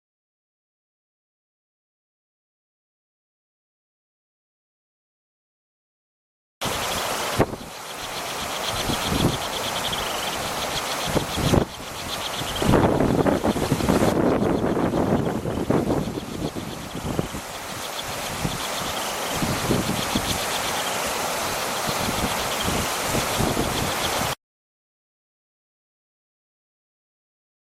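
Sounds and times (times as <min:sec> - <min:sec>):
slender-billed miner singing: 0:06.6 - 0:24.4.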